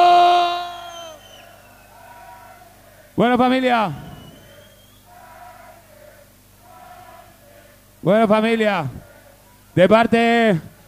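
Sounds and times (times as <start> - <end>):
crowd cheering and shouting: 0.0 - 7.9
speech: 3.2 - 4.0, 8.0 - 9.1, 9.8 - 10.7.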